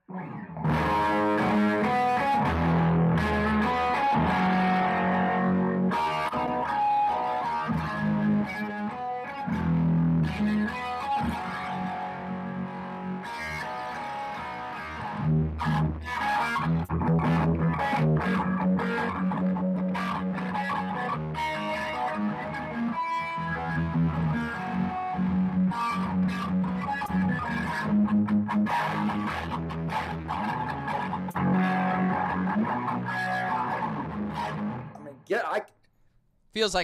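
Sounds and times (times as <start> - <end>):
distorted electric guitar lick with effects: 0.0 - 35.2
speech: 36.6 - 36.8.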